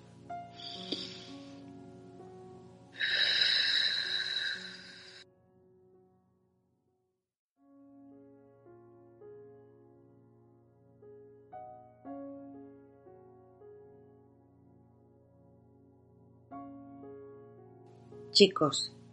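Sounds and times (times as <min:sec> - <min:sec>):
soft music: 0:00.0 - 0:06.9, 0:07.6 - 0:19.1
deep breath in and out: 0:00.5 - 0:01.7, 0:03.0 - 0:05.2
speech: 0:18.4 - 0:19.0.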